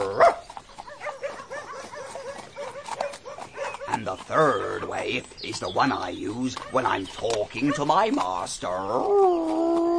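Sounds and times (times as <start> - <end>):
farm dog barking and yelping: 0.0 - 3.9
speech: 4.0 - 9.8.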